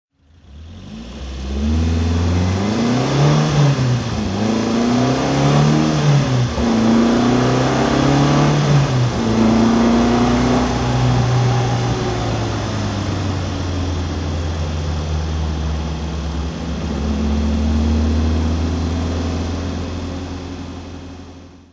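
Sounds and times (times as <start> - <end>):
tuned Alfa Romeo 1600 Spider engine while driving: 0.2 - 21.7.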